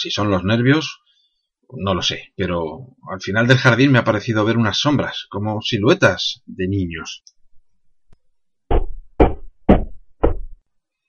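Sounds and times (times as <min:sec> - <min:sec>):
speech: 0:00.0 - 0:01.0, 0:01.7 - 0:07.4
loud heavy knocks on a door: 0:08.7 - 0:10.6.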